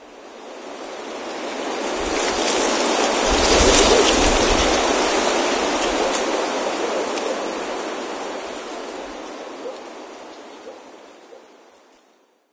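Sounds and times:
leaves rustling: 0.0 - 12.2.

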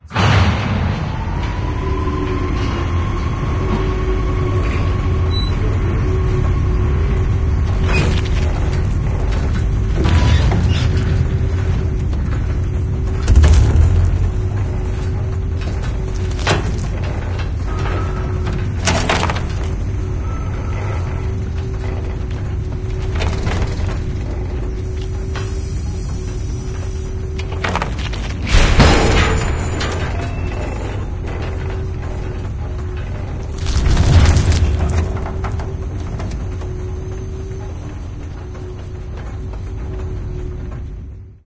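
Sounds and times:
ambient music: 0.0 - 41.4
train ride: 0.0 - 41.4.

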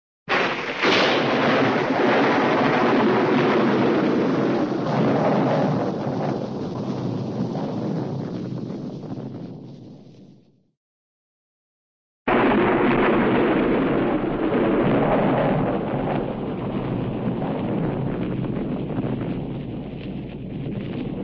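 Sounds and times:
cartoon thunder clap and rumble: 0.3 - 10.5, 12.3 - 21.2.

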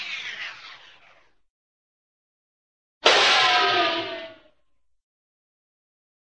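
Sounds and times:
cartoon ricochet whoosh through a tube: 3.0 - 4.5.

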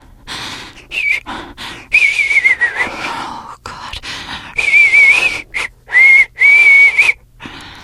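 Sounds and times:
teen girl whistling nervously: 0.9 - 1.3, 2.0 - 3.0, 4.6 - 7.2.

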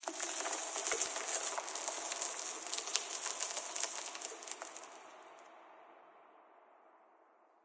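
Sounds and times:
rock debris: 0.0 - 5.1.

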